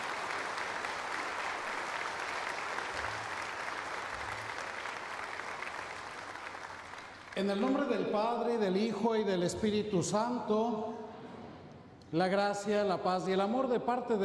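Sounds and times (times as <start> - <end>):
church audience applauding: 0.0 - 8.1
speech: 7.4 - 11.0, 12.1 - 14.2.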